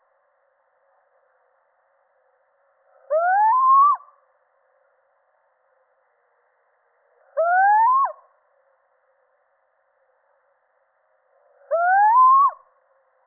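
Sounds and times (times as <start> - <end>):
male little owl plaintive rising whistle call: 3.1 - 4.2, 7.4 - 8.3, 11.7 - 12.7.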